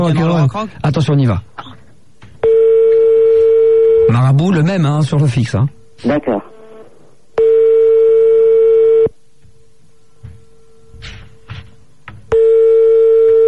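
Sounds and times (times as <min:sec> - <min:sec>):
speech: 0:00.0 - 0:01.7, 0:04.1 - 0:06.6
landline telephone ringback tone heard down the line: 0:02.4 - 0:04.1, 0:07.4 - 0:09.1, 0:12.4 - 0:13.4.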